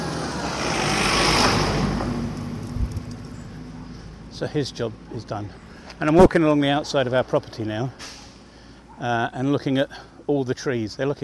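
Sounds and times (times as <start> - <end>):
heavy lorry carrying a digger rumbling past with deep engine drone: 0.0 - 4.7
road noise: 0.0 - 11.2
speech: 4.4 - 8.2, 9.0 - 11.2.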